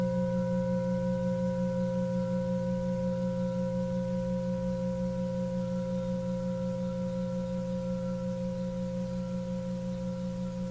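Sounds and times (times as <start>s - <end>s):
Tibetan singing bowl ringing: 0.0s - 10.7s.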